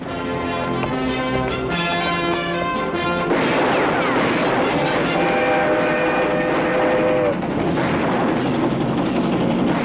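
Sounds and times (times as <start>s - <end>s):
arriving train rumbling and clattering: 0.0s - 9.8s
long shrill train whistle: 4.7s - 7.4s.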